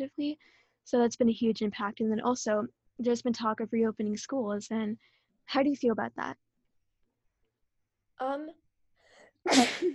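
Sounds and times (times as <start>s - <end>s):
speech: 0.0s - 6.4s, 8.2s - 8.6s, 9.4s - 9.9s
person sneezing: 9.5s - 9.9s.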